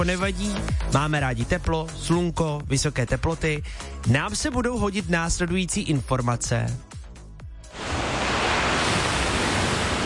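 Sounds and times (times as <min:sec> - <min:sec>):
speech: 0:00.0 - 0:06.9
splashing waves of the Adriatic Sea: 0:07.7 - 0:10.0.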